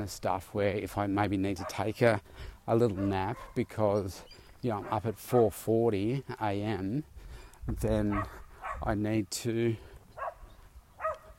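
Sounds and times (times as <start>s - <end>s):
speech: 0.0s - 7.1s, 7.7s - 9.9s
dogs barking: 1.6s - 1.9s, 2.9s - 3.7s, 4.7s - 5.6s, 8.1s - 8.9s, 10.2s - 11.3s.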